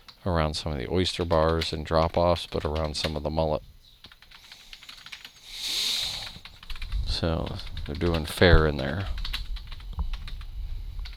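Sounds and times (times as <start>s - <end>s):
speech: 0.2s - 3.7s, 7.2s - 9.2s
typing on a computer keyboard: 0.8s - 3.4s, 4.0s - 11.1s
broad steady hiss: 4.4s - 9.2s.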